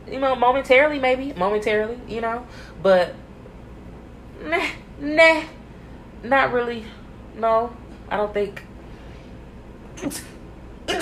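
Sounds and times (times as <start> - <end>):
speech: 0.1 - 3.2, 4.4 - 5.6, 6.2 - 8.7, 10.0 - 10.3
person sneezing: 10.0 - 10.9.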